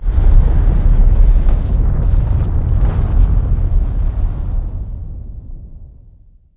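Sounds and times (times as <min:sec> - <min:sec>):
fire crackling: 0:00.0 - 0:06.1.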